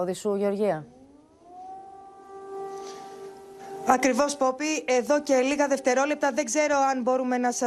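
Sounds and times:
speech: 0.0 - 1.0, 3.9 - 7.6
air raid siren wailing across a city: 0.8 - 5.1.

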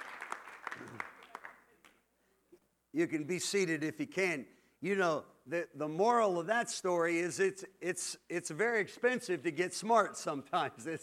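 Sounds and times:
congregation applauding: 0.0 - 1.6
speech: 2.9 - 11.0.

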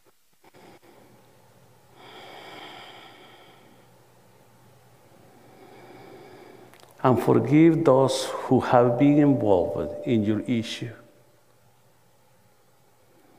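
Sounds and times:
slow deep breathing during a guided church service meditation: 1.9 - 4.0, 5.2 - 6.9
speech: 7.0 - 11.0.

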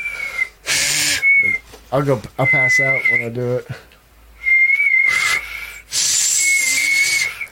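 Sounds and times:
person whistling long high notes: 0.0 - 1.6, 2.4 - 3.3, 4.4 - 7.4
speech: 1.9 - 3.9.

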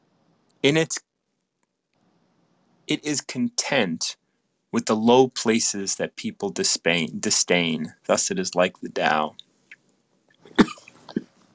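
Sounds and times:
speech: 0.6 - 1.1, 2.9 - 9.4
person coughing: 10.5 - 11.2.

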